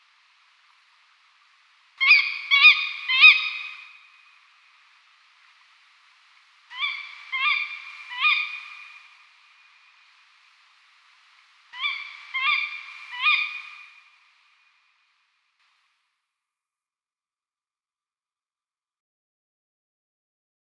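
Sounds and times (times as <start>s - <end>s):
female tawny owl harsh nasal calls: 2.0s - 4.1s, 6.7s - 9.2s, 11.7s - 14.0s.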